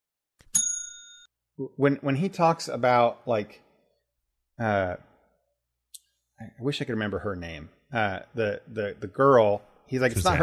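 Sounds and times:
bell ringing as spoiler warning: 0.4 - 1.3
speech: 1.6 - 3.6, 4.6 - 5.1, 6.4 - 10.4.

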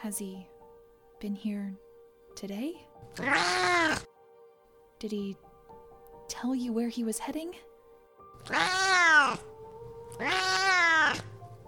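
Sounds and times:
speech: 0.0 - 0.6, 1.2 - 4.1, 5.0 - 5.5, 6.3 - 7.7, 8.4 - 9.5, 10.2 - 11.3
cat meowing: 3.1 - 4.1, 8.4 - 9.5, 10.1 - 11.4.

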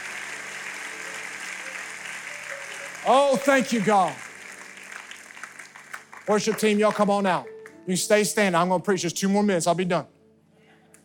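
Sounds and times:
congregation clapping: 0.0 - 8.0
speech: 3.0 - 4.2, 6.3 - 10.2.

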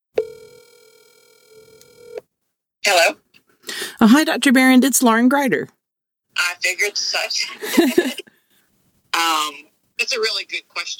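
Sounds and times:
telephone dial tone: 0.2 - 2.3
speech: 4.0 - 5.8, 6.6 - 8.3, 9.3 - 10.9
laughter: 7.4 - 8.3.

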